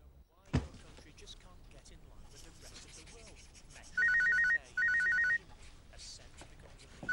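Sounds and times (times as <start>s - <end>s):
dull thump: 0.5s - 0.9s
mobile phone ringtone for an incoming call: 4.0s - 5.4s.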